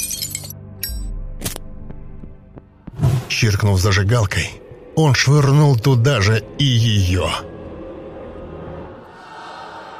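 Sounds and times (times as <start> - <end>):
glass fragments tinkling as they settle: 0.0 - 1.0
glass flask of ether shattering after being hurled: 0.0 - 1.1
speech: 3.3 - 7.6.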